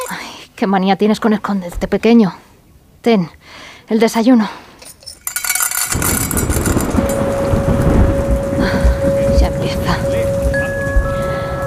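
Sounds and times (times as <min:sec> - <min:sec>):
speech: 0:00.1 - 0:02.4, 0:03.0 - 0:04.6
heavy rain: 0:05.9 - 0:11.6
thunder rumbling: 0:05.9 - 0:11.6.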